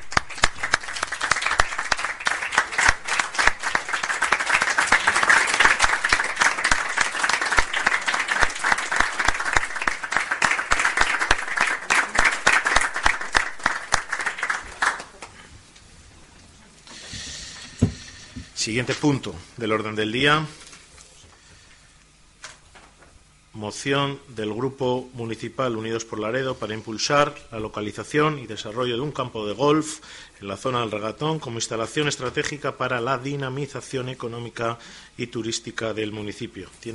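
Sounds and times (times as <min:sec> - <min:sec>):
room full of people applauding after unanimous vote: 0:00.0 - 0:15.5
speech: 0:18.6 - 0:20.6, 0:23.7 - 0:36.9.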